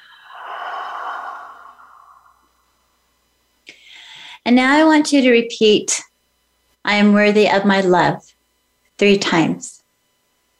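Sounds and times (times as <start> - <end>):
deep breath out: 0.0 - 2.9, 3.7 - 4.4
speech: 4.5 - 6.1, 6.9 - 8.3, 9.0 - 9.8.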